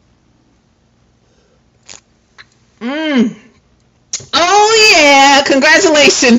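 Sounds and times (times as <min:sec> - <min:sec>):
slurping sips of a hot drink from a cup: 0:01.8 - 0:02.1
satisfied vocal ahh: 0:02.8 - 0:03.4
speech: 0:02.8 - 0:03.4, 0:04.3 - 0:06.3.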